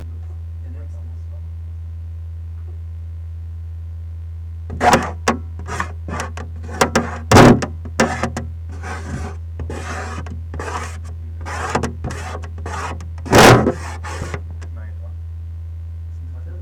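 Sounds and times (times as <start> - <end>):
fingers on plaster: 4.7 - 14.6.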